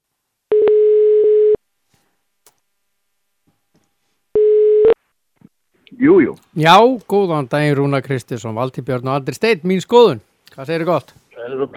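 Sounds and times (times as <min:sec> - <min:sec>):
telephone tones while placing a call: 0:00.5 - 0:01.6, 0:04.4 - 0:05.0
speech: 0:06.0 - 0:11.7.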